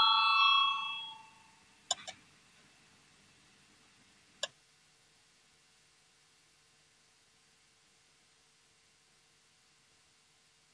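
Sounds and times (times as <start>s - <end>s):
parliamentary voting bell ringing: 0.0s - 1.4s
sharp clicks: 1.9s - 2.2s.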